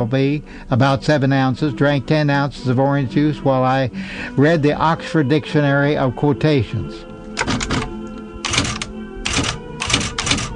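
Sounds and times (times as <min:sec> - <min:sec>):
speech: 0:00.0 - 0:07.6
mechanical typewriter keystrokes: 0:07.4 - 0:10.5.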